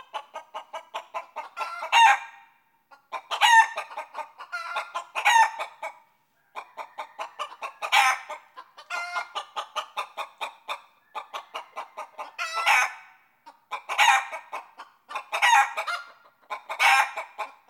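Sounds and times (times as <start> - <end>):
chickens clucking: 0.0 - 17.6.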